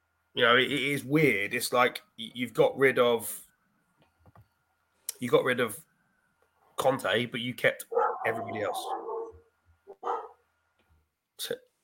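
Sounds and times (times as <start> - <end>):
speech: 0.4 - 3.4, 5.2 - 5.9, 6.8 - 9.0, 11.4 - 11.7
pet dog barking: 7.9 - 10.4.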